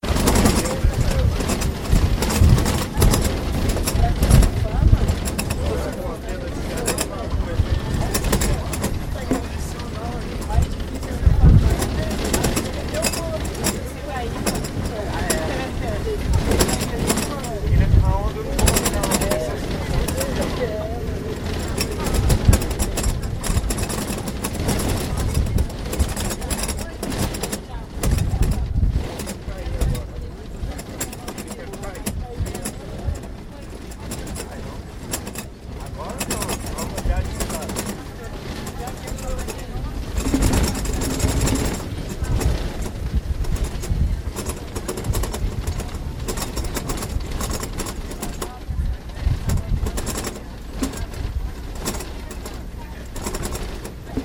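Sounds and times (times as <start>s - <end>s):
bus travelling to Paraty Mirim: 0.0s - 54.2s.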